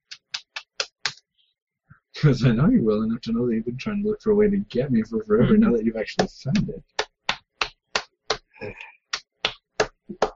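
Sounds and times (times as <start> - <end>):
hands slapping a bare stomach: 0.0 - 1.3, 6.6 - 8.5, 9.1 - 10.3
speech: 2.2 - 7.0, 8.6 - 8.9.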